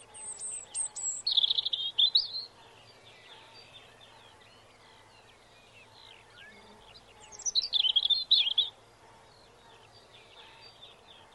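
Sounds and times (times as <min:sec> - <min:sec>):
robin singing: 0:00.0 - 0:11.3.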